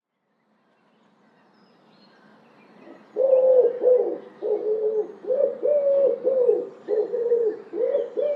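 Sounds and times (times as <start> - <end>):
common wood pigeon song of low hollow coos: 3.2 - 8.3.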